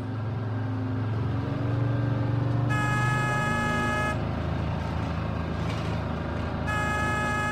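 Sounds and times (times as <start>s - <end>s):
bus engine low rumble: 0.0s - 7.5s
school bus horn honking: 2.6s - 4.2s, 6.6s - 7.5s.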